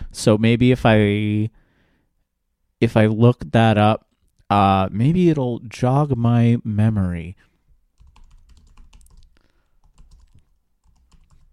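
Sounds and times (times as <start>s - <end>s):
speech: 0.2s - 1.6s, 2.8s - 7.5s
fast typing on a computer keyboard: 8.0s - 11.5s.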